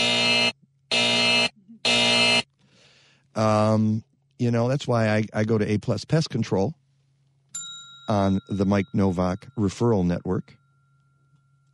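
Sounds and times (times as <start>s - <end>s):
harsh loud electronic alarm buzzer: 0.0s - 2.5s
speech: 3.4s - 6.8s, 8.1s - 10.6s.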